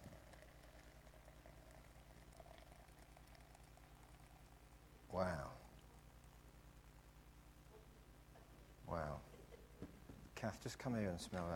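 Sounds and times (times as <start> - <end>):
liquid pouring into a container: 0.0 - 4.9
speech: 5.1 - 5.6, 8.9 - 9.3, 10.4 - 11.5.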